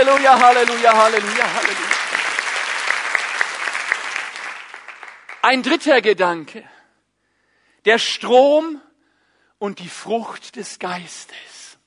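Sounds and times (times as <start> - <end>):
speech: 0.0 - 2.0, 5.4 - 6.8, 7.8 - 8.9, 9.6 - 11.6
crowd applauding: 0.0 - 5.7.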